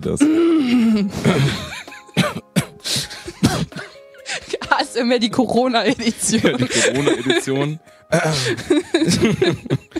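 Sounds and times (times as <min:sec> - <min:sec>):
speech: 0:00.0 - 0:02.4, 0:05.0 - 0:09.9
person clearing throat into a microphone: 0:02.2 - 0:02.8, 0:03.4 - 0:03.9
laughter: 0:05.9 - 0:09.9.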